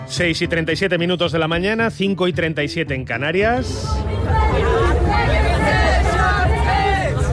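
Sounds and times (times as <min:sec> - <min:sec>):
speech: 0:00.2 - 0:05.4
crowd babble at a protest against rising housing prices in Berlin: 0:03.5 - 0:07.3.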